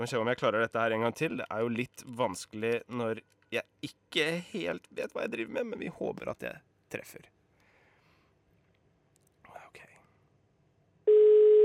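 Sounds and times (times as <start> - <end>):
speech: 0.0 - 7.4
steady telephone dialing tone: 11.1 - 11.6.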